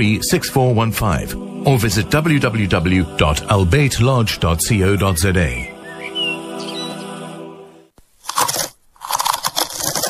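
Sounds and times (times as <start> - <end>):
speech: 0.0 - 5.7
tonal background: 0.0 - 7.9
potato chips being crunched and chewed: 8.2 - 10.0.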